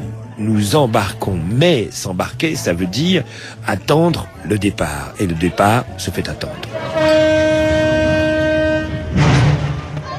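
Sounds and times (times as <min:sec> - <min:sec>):
speech: 0:00.4 - 0:07.2
train horn tone at a station platform: 0:06.7 - 0:09.6.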